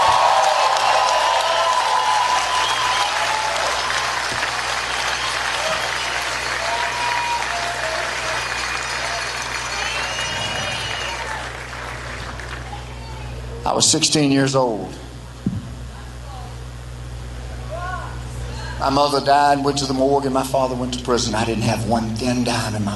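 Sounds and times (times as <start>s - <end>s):
large crowd applauding: 0.0s - 13.5s
speech: 13.8s - 15.0s, 18.8s - 22.9s.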